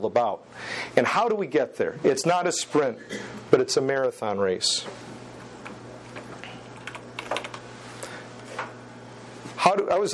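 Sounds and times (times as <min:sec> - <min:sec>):
speech: 0:00.0 - 0:05.2, 0:09.9 - 0:10.1
steady low hum: 0:00.0 - 0:10.1
typing on a computer keyboard: 0:06.8 - 0:07.6.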